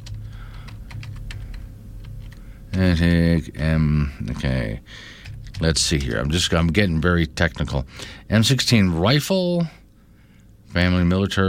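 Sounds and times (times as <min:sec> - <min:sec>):
typing on a computer keyboard: 0:00.0 - 0:02.4, 0:05.1 - 0:06.2
low steady hum: 0:00.0 - 0:11.4
speech: 0:02.8 - 0:09.8, 0:10.8 - 0:11.4.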